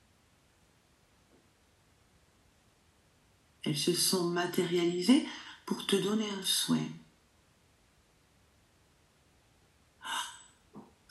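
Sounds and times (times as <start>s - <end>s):
speech: 3.6s - 7.0s
deep breathing during a guided meditation: 10.0s - 10.6s.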